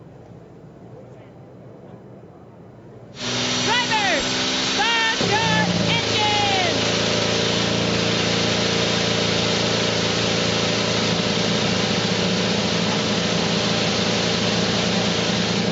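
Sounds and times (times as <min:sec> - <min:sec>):
IndyCar race car engines revving and idling: 0:03.2 - 0:15.7.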